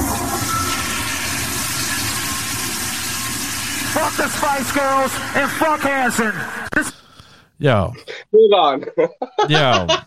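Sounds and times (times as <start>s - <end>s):
toilet flushing: 0.0s - 6.7s
speech: 4.1s - 7.0s, 7.6s - 10.0s
laughter: 8.7s - 10.0s.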